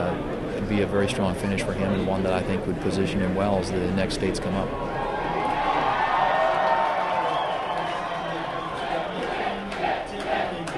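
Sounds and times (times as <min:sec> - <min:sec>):
speech: 0:00.1 - 0:05.0
large crowd cheering and shouting at an election night rally in Iowa: 0:04.8 - 0:10.7
people whooping at an election night rally in Iowa: 0:04.9 - 0:09.3.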